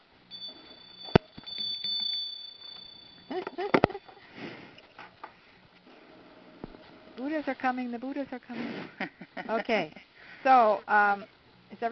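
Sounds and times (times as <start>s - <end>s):
hand bell ringing during a class: 0.3s - 4.2s
speech: 3.3s - 4.0s, 7.2s - 11.9s.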